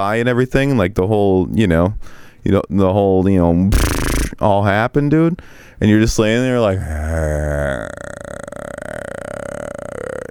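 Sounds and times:
speech: 0.0 - 8.4
man vocally imitating a blissed-out drugged groan: 6.6 - 10.2.

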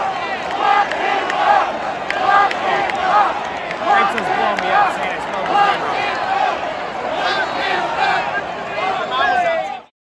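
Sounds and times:
large crowd booing at a World Series baseball game: 0.0 - 9.9.

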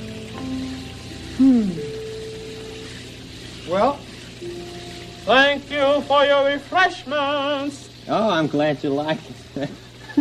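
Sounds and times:
low tonal hum: 0.0 - 8.0
cool water running over tired feet: 0.0 - 10.1
speech: 3.7 - 10.1.

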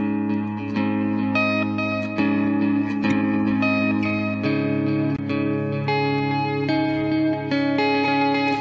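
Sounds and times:
electric guitar riff with delay echo effect: 0.0 - 8.5.

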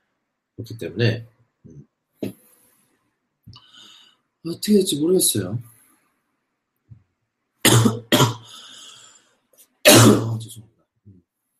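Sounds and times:
speech: 0.6 - 1.9, 4.4 - 5.7
faint raspy breath: 3.5 - 4.3, 8.4 - 9.4
person coughing harshly: 7.7 - 8.6, 9.9 - 10.4.

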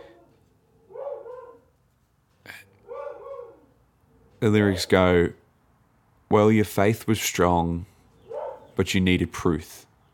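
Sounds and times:
dog barking next door: 0.0 - 1.7, 2.8 - 3.8, 8.3 - 8.8
speech: 4.4 - 5.4, 6.3 - 7.9, 8.8 - 9.9.

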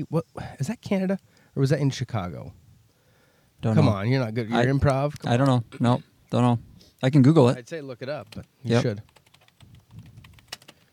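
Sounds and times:
speech: 0.0 - 2.6, 3.6 - 9.1
typing on a new Mac chiclet keyboard: 8.1 - 10.9.

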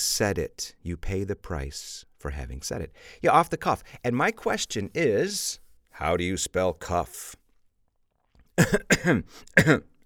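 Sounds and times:
speech: 0.0 - 7.4, 8.6 - 9.9
person coughing harshly: 8.6 - 10.0.

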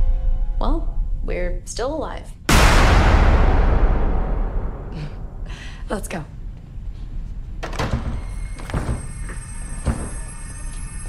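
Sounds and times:
low rumbling background: 0.0 - 9.1
speech: 0.6 - 3.7, 5.9 - 6.4
door being forced and broken: 7.6 - 10.3.

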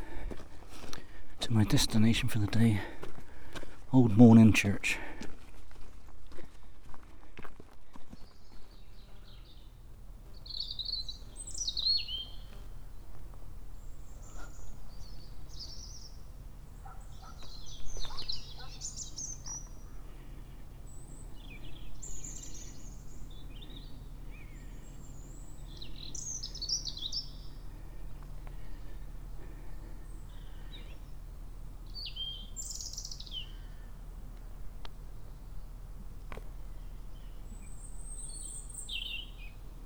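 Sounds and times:
several birds singing and chirping outdoors: 0.8 - 4.9, 8.3 - 39.8
speech: 1.5 - 3.0, 3.9 - 5.2
steady low rumble of noise: 8.7 - 39.8.

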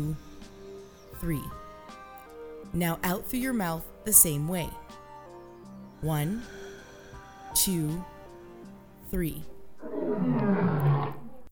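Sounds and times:
speech: 0.0 - 0.3, 1.2 - 1.6, 2.7 - 5.0, 6.0 - 6.6, 7.5 - 8.1, 9.1 - 9.5, 10.1 - 10.8
lion roaring: 9.8 - 11.5.

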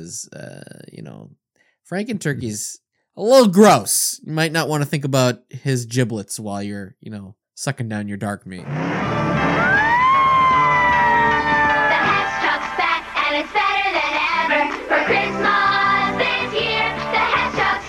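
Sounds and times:
speech: 0.0 - 9.8
busy upbeat music: 8.7 - 17.8
toy fire truck siren wailing: 9.6 - 12.1.

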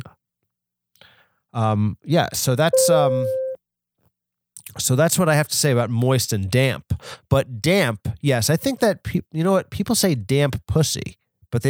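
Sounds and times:
speech: 1.5 - 3.4, 4.7 - 11.6
voice imitating a dial-up modem connecting: 2.8 - 3.6.

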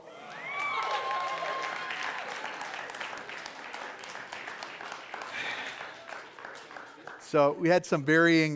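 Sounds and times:
people whooping: 0.0 - 3.4
audience applauding after a pregnancy announcement: 0.0 - 7.8
speech: 7.3 - 8.5.

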